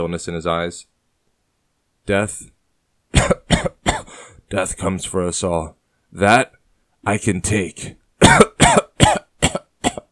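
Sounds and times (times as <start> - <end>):
speech: 0.0 - 0.9, 2.1 - 3.5, 4.5 - 8.8
person coughing violently: 3.1 - 4.3, 8.2 - 10.0.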